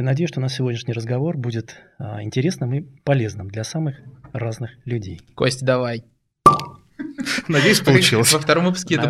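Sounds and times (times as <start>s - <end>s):
speech: 0.0s - 9.0s
cork popping from a wine bottle: 6.4s - 6.8s
laughter: 7.0s - 8.2s.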